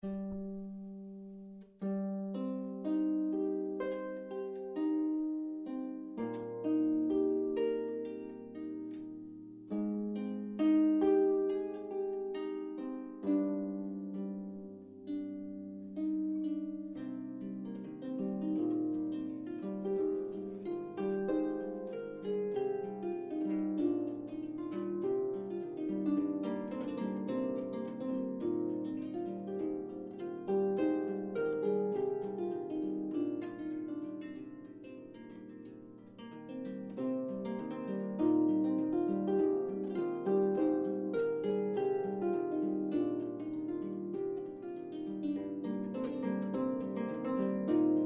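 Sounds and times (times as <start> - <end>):
34-string oak stringed instrument playing: 0.0 - 48.0.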